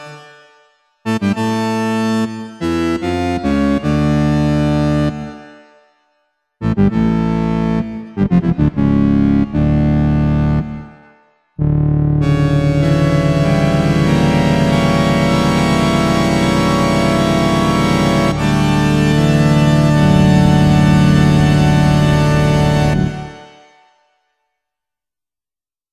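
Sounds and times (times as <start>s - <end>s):
pipe organ: 1.1s - 5.3s, 6.6s - 10.8s, 11.6s - 23.4s.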